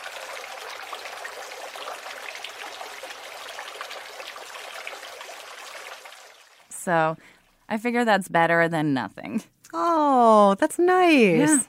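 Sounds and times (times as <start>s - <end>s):
water bubbling from a small fountain in a backyard: 0.0s - 6.7s
speech: 6.8s - 11.6s.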